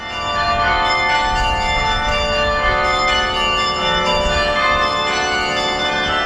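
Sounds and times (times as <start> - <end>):
carillon of 48 church bells playing a slow melody in a church tower: 0.0 - 6.2.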